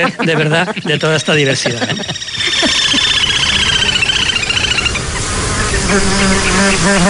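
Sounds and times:
speech: 0.0 - 3.0, 5.9 - 7.0
laughter: 0.0 - 4.5
steady hum: 0.0 - 7.0
mosquitoes buzzing around the microphone: 1.7 - 7.0.

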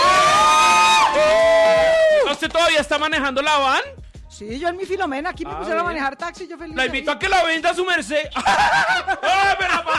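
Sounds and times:
sustained high-pitched whoop: 0.0 - 2.3
loud crowd cheering: 0.0 - 2.4
speech: 2.5 - 9.9
laughter: 8.4 - 9.9.

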